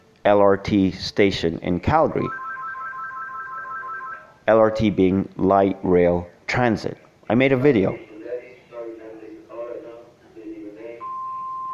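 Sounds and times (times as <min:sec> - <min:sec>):
speech: 0:00.2 - 0:02.4, 0:04.5 - 0:08.1
telephone ringing at a parents' house: 0:02.2 - 0:04.4.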